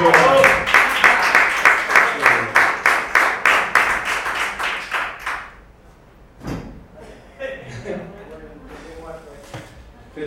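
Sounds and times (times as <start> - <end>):
speech: 0.0 - 0.4
audience applauding: 0.0 - 5.7
laughter: 7.0 - 8.4.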